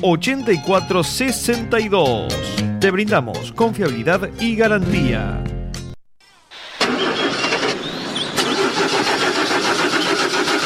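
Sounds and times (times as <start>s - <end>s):
speech: 0.0s - 5.5s
generator engine starting and running: 6.5s - 10.6s.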